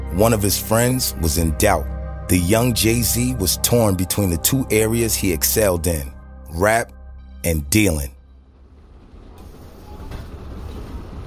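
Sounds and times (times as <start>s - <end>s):
speech: 0.1s - 8.2s
commuter train rumbling on rails: 8.4s - 11.2s.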